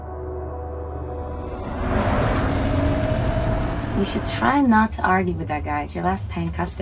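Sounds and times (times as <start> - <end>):
vehicle engine humming: 1.4 - 6.7
speech: 4.0 - 6.8.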